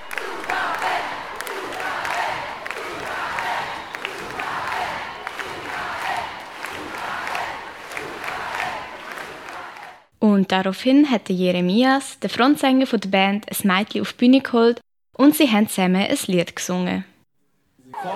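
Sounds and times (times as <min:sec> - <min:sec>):
large concert crowd cheering and shouting for an encore: 0:00.0 - 0:10.0
scattered claps from concert audience: 0:00.0 - 0:10.1
concert audience whistles: 0:03.3 - 0:04.3
speech: 0:10.4 - 0:17.1.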